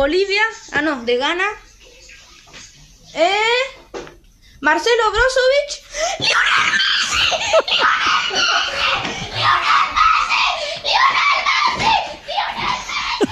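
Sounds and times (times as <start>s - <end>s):
speech: 0.0s - 1.6s, 3.1s - 3.8s, 4.6s - 9.8s
child screaming excitedly over finding a football sticker: 6.2s - 11.8s
child breathless laughter and squeals: 6.2s - 13.3s.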